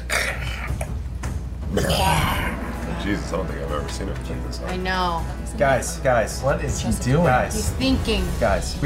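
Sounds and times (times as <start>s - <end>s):
person making a long loud croaking burp: 0.0s - 1.0s, 1.7s - 3.4s
speech: 1.7s - 2.1s, 3.1s - 8.8s.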